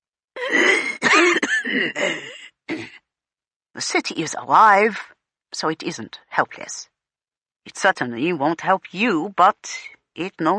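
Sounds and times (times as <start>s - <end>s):
rough phlegmy smoker's cough on a phone: 0.4s - 3.0s
speech: 1.8s - 2.4s, 3.8s - 6.9s, 7.6s - 10.5s.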